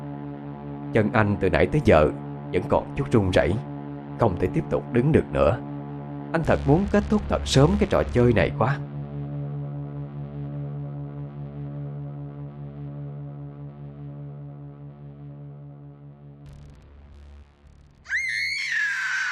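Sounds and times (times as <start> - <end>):
speech: 0.9 - 5.7, 6.3 - 8.9
low droning tone: 5.6 - 18.1
person screaming during a Halloween night game in a cemetery: 18.1 - 19.2.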